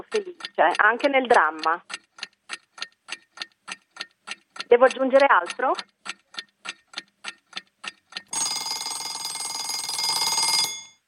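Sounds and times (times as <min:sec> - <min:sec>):
30-second timer alarm clock ticking: 0:00.0 - 0:10.8
speech: 0:00.1 - 0:02.0, 0:04.7 - 0:05.9
30-second timer alarm clock ringing: 0:08.3 - 0:11.0.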